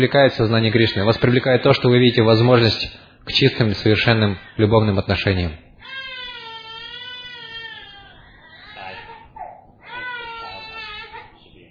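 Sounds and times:
speech: 0:00.0 - 0:05.7
infant wailing: 0:00.7 - 0:01.4, 0:04.1 - 0:04.8, 0:05.8 - 0:11.5.

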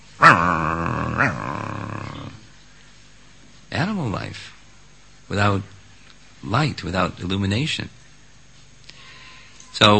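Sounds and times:
dog snarling and growling: 0:00.2 - 0:02.5
dog barking: 0:01.2 - 0:01.4
speech: 0:03.8 - 0:04.6, 0:05.3 - 0:05.7, 0:06.4 - 0:08.0, 0:09.8 - 0:09.9.

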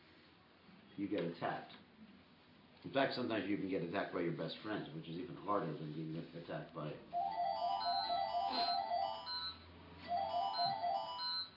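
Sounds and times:
speech: 0:01.0 - 0:01.8, 0:02.8 - 0:07.3
landline telephone ringing with electronic trill: 0:07.1 - 0:11.5.

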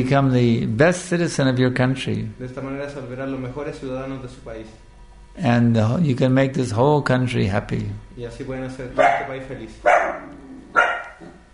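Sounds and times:
speech: 0:00.0 - 0:10.2
dog barking: 0:09.0 - 0:11.4.

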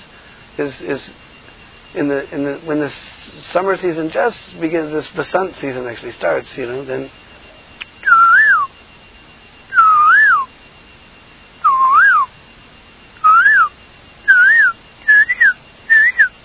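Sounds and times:
speech: 0:00.6 - 0:01.3, 0:01.9 - 0:07.2
person whistling an imitation of a small all-black songbird's morning song: 0:08.0 - 0:08.7, 0:09.7 - 0:10.5, 0:11.6 - 0:12.3, 0:13.2 - 0:13.7, 0:14.3 - 0:16.3.

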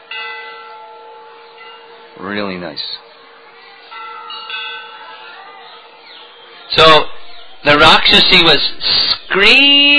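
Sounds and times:
bell ringing: 0:00.0 - 0:02.5, 0:03.8 - 0:06.3
speech: 0:02.2 - 0:03.0, 0:06.8 - 0:09.9.

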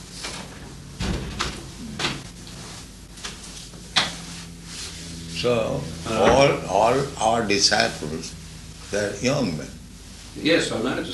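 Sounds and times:
low hum: 0:00.0 - 0:11.1
door being pushed shut: 0:01.0 - 0:02.2
speech: 0:05.4 - 0:09.8, 0:10.4 - 0:11.1.

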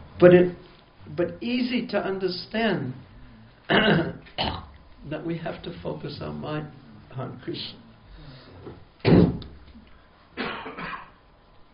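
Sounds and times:
speech: 0:00.2 - 0:03.1, 0:03.7 - 0:07.8, 0:08.6 - 0:09.4
person coughing harshly: 0:03.7 - 0:04.7, 0:10.4 - 0:11.2.

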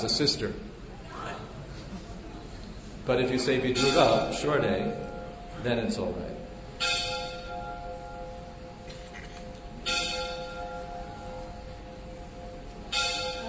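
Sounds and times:
speech: 0:00.0 - 0:00.8, 0:03.1 - 0:06.4
bell ringing: 0:03.6 - 0:06.2, 0:06.8 - 0:13.4.

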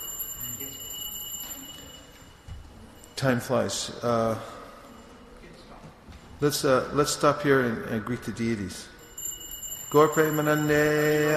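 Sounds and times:
clock chiming six o'clock: 0:00.0 - 0:04.0, 0:09.0 - 0:11.3
speech: 0:03.2 - 0:04.6, 0:06.4 - 0:08.9, 0:09.9 - 0:11.3.

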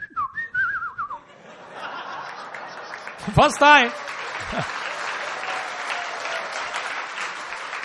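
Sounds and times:
warbling whistle imitating the call of a long-tailed bird: 0:00.0 - 0:01.2
laughter: 0:01.2 - 0:06.9
speech: 0:03.3 - 0:04.8.

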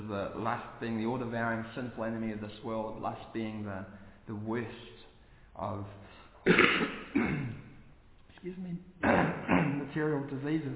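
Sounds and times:
speech: 0:00.1 - 0:04.9, 0:05.6 - 0:07.6, 0:08.4 - 0:10.7
person coughing: 0:06.4 - 0:07.8, 0:09.0 - 0:10.0
throat clearing: 0:06.4 - 0:07.8, 0:09.0 - 0:10.0.

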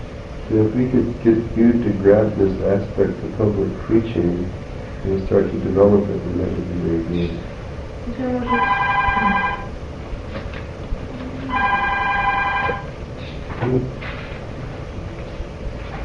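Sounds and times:
speech: 0:00.5 - 0:09.6, 0:13.7 - 0:14.0
telephone ringing with long bright trills in a meeting room: 0:08.4 - 0:09.8, 0:11.5 - 0:13.0.

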